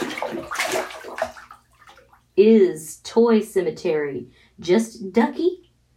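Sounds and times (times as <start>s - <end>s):
chilly bath water sloshing and splashing: 0.0s - 2.4s
speech: 2.4s - 5.6s.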